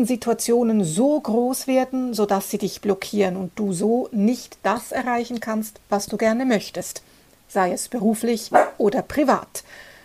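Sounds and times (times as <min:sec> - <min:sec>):
speech: 0:00.0 - 0:09.9
small dog barking and yipping: 0:08.5 - 0:08.8.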